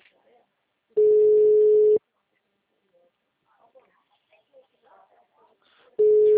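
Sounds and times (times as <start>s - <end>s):
faint scattered noises: 0.0s - 6.3s
telephone ring tone on a dialed call not getting through: 1.0s - 2.0s, 6.0s - 6.3s.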